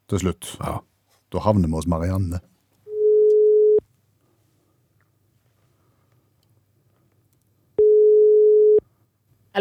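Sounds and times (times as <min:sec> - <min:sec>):
speech: 0:00.1 - 0:02.6
telephone ringback tone beeps while placing a call: 0:02.9 - 0:03.8, 0:07.8 - 0:08.8.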